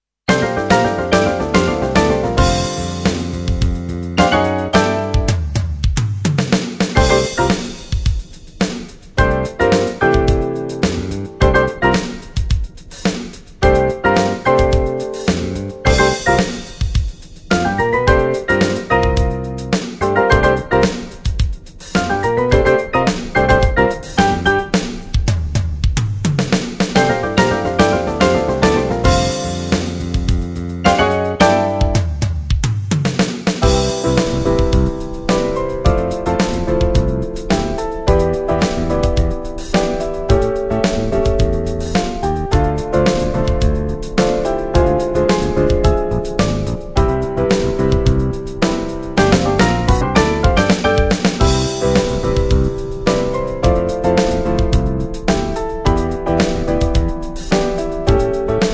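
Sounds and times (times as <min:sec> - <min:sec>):
drum explosion: 0:00.3 - 0:58.7.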